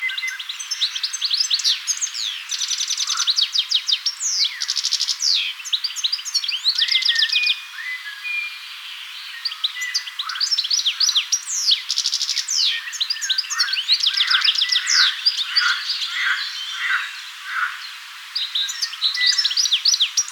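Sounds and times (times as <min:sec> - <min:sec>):
goldfinch song: 0:00.0 - 0:20.2.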